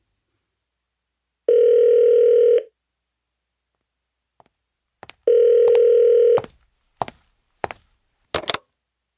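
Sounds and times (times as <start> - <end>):
telephone ringing: 1.5 - 2.7, 5.3 - 6.5.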